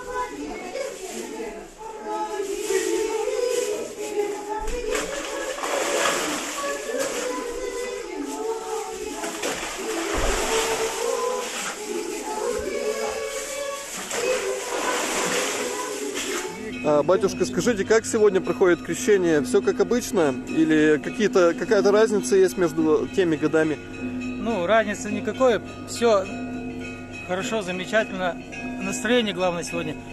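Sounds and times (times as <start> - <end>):
murmur of voices of a lively outdoor crowd: 0.0 - 25.9
men plunging into the waters called the Jordan during an Epiphany feast: 4.9 - 7.9, 9.1 - 11.9, 12.6 - 16.8
speech: 17.0 - 26.5, 27.3 - 30.1.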